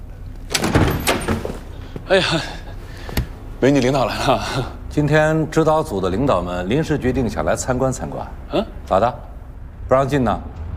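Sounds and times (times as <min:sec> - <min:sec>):
door opening with a clunk: 0:00.5 - 0:01.7
speech: 0:02.1 - 0:02.6, 0:03.6 - 0:09.3, 0:09.9 - 0:10.6.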